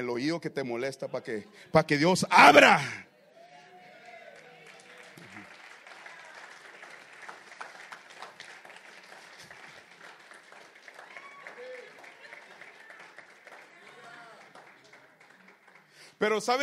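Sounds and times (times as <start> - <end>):
speech: 0.0 - 3.1, 16.2 - 16.6
crowd hand clapping: 3.8 - 16.6.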